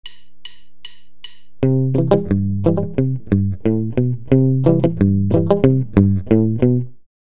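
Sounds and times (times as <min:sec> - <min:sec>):
palm-muted country guitar riff: 0:01.6 - 0:07.0.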